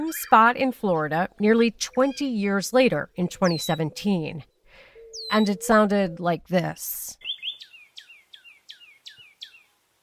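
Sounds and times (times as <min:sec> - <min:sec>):
speech: 0:00.1 - 0:04.5, 0:05.2 - 0:07.3
northern cardinal singing downslurred whistles: 0:05.0 - 0:05.7, 0:07.2 - 0:09.6.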